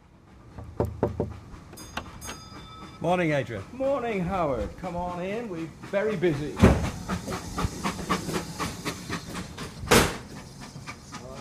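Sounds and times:
0-6-2 steam freight locomotive chuffing: 0.0 - 11.4
steam freight locomotive wheels clattering: 0.0 - 11.4
0-6-2 steam freight locomotive steam hissing: 1.3 - 11.4
speech: 3.0 - 7.5
sharp burst of steam from 0-6-2 steam freight locomotive: 5.6 - 11.4.

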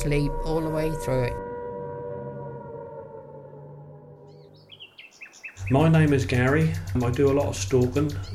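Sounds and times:
speech: 0.0 - 1.5, 5.7 - 8.3
air raid siren wailing in Wicker Market, Suffolk: 0.0 - 4.8
bird chirps: 4.3 - 8.3.

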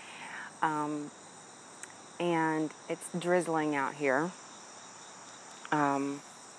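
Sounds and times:
chorus of crickets and cicadas in the trees: 0.0 - 6.5
speech: 0.6 - 1.2, 2.2 - 4.4, 5.7 - 6.3.

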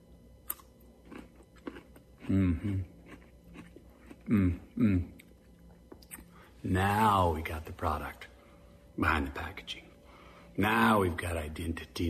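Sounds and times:
chewing on an aged shrunken pickle: 0.4 - 4.3
speech: 2.3 - 2.9, 4.3 - 5.2, 6.6 - 8.3, 9.0 - 9.9, 10.6 - 12.0.

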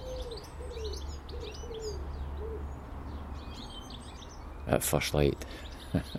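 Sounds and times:
pigeon cooing in soft low rounded calls: 0.0 - 2.7
other birds chirping and twittering: 0.0 - 6.1
speech: 4.7 - 6.1.

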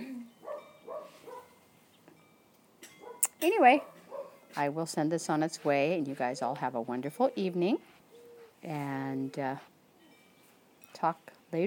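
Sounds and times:
dog barking in short tonal yaps: 0.4 - 1.5, 3.0 - 3.2, 3.8 - 4.4
speech: 3.4 - 4.0, 4.6 - 7.9, 8.6 - 9.7, 11.0 - 11.6.

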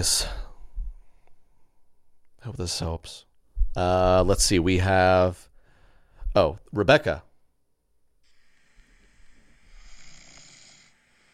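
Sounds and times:
speech: 0.0 - 0.4, 2.4 - 5.5, 6.4 - 7.3
man snoring: 8.3 - 11.3.

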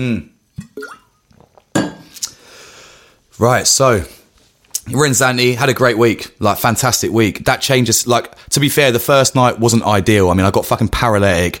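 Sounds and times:
speech: 0.0 - 0.3, 3.4 - 4.2, 4.9 - 11.5
glass clinks: 0.6 - 1.2, 1.8 - 2.1
person gulping and swallowing water: 0.6 - 2.4
soft breathy exhale: 2.3 - 3.2.

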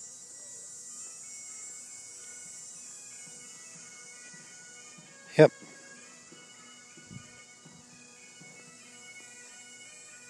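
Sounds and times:
distant bagpipes playing: 0.0 - 10.2
soft outdoor hiss: 0.0 - 10.2
speech: 5.4 - 5.6.

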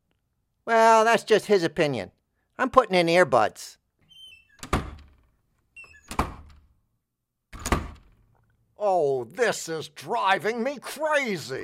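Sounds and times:
speech: 0.7 - 3.8, 8.8 - 11.6
door latch rattle: 4.5 - 5.3, 5.9 - 6.7, 7.6 - 8.3
door in a studio slamming shut: 4.6 - 5.3, 6.0 - 6.6, 7.6 - 8.2.

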